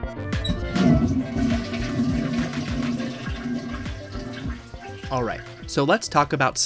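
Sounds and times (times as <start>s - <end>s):
faint music: 0.1s - 6.6s
toilet flushing with swirling water draining: 0.4s - 5.8s
speech: 5.1s - 6.6s.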